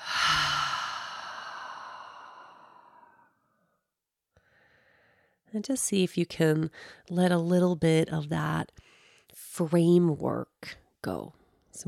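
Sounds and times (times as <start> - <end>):
deep exhale through an open mouth during a guided breathing exercise: 0.0 - 3.2
speech: 5.5 - 8.9, 9.6 - 11.8.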